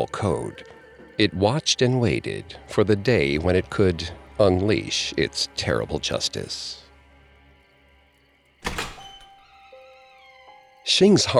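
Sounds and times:
speech: 0.1s - 6.8s, 10.9s - 11.3s
heavy door shutting with a thunk: 8.6s - 9.5s.

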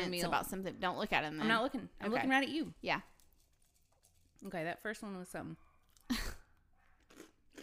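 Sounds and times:
speech: 0.0s - 3.1s, 4.4s - 6.2s
crispy marshmallow cereal being chewed: 3.2s - 4.4s, 6.8s - 7.6s.

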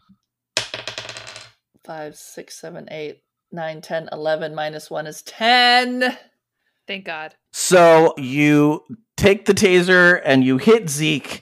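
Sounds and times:
die rolling across a hard tabletop: 0.6s - 1.6s
speech: 1.9s - 6.3s, 6.9s - 11.4s.

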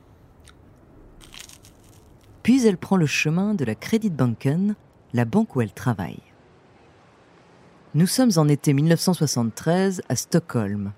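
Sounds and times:
woman crunching and chewing breakfast: 0.4s - 2.4s
speech: 2.4s - 6.3s, 7.9s - 10.9s.

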